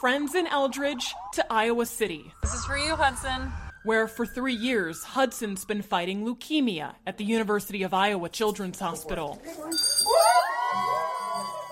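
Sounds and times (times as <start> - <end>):
speech: 0.0 - 10.5
remission bell rung at a children's hospital: 9.7 - 11.7.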